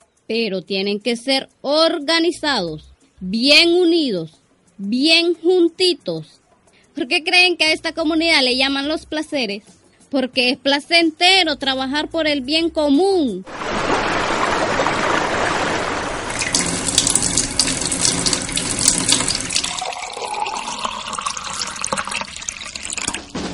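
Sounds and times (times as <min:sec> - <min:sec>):
speech: 0:00.3 - 0:06.4, 0:07.0 - 0:13.9
water running from a tap: 0:13.5 - 0:23.4.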